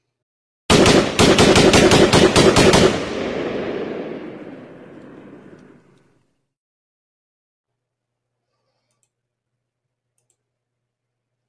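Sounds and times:
automatic gunfire: 0.7s - 5.8s.

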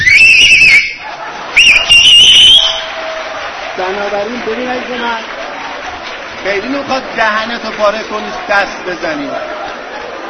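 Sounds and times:
loud shrill whistling with fingers in mouth: 0.0s - 1.0s, 1.6s - 2.9s
noisy crowd: 0.0s - 10.2s
laughter: 1.0s - 2.0s, 6.7s - 10.2s
speech: 4.2s - 5.4s, 6.4s - 9.6s.

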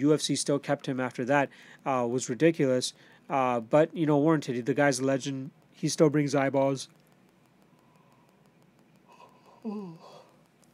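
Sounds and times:
speech: 0.0s - 7.0s, 9.6s - 10.1s
short voiced yawn with a breathy tail: 9.1s - 10.3s.

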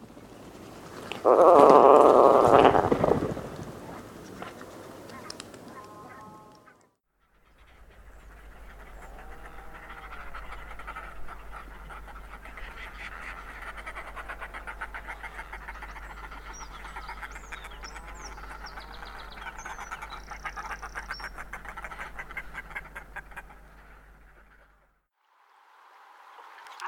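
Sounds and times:
Atlantic puffin growling: 1.2s - 3.4s.

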